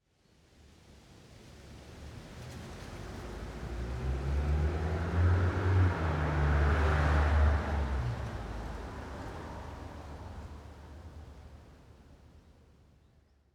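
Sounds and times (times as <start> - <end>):
diffuse car passing by: 2.1 - 11.8.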